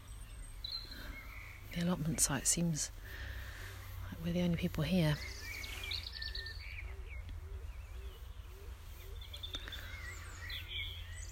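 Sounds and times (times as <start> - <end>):
birds tweeting at an allotment site in the early evening: 0.0 - 11.3
speech: 1.8 - 3.4, 4.2 - 5.4
low repeated cooing at an allotment site in the early evening: 6.3 - 11.0.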